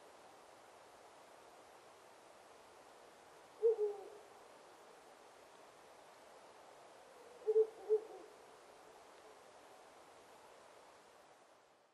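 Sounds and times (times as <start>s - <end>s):
soft background hiss: 0.0s - 11.9s
owl giving low hoots: 3.6s - 4.2s, 7.1s - 8.4s.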